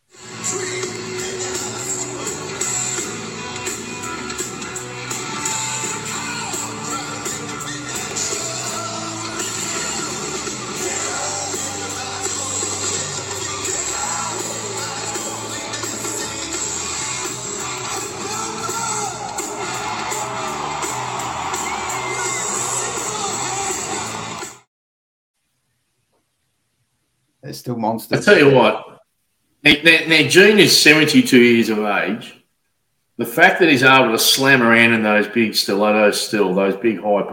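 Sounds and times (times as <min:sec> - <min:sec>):
live rock band with guitars, drums and vocals: 0:00.2 - 0:24.6
crowd cheering at a live rock concert: 0:00.8 - 0:24.7
speech: 0:27.6 - 0:28.9, 0:29.7 - 0:32.4, 0:33.2 - 0:37.3.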